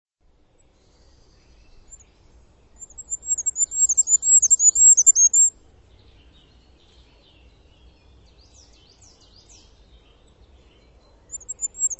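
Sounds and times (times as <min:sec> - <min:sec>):
bird giving very high thin arched chirps: 0:00.6 - 0:11.9.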